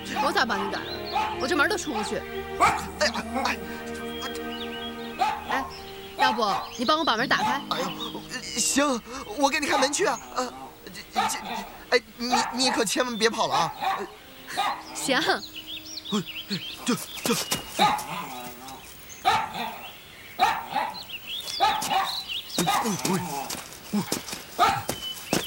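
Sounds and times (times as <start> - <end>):
people talking and calling out: 0.0 - 19.0, 22.6 - 24.9
guard dog barking while chasing a man: 0.1 - 1.5, 2.6 - 3.0, 5.2 - 6.8, 9.6 - 10.1, 11.1 - 14.8, 17.8 - 18.4, 19.2 - 19.8, 20.4 - 23.2, 24.6 - 25.0.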